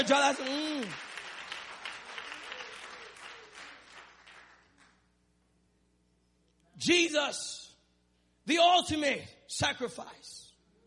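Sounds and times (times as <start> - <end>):
speech: 0.0 - 1.1, 6.8 - 7.6, 8.5 - 10.4
church congregation applauding with hand claps: 0.0 - 5.1.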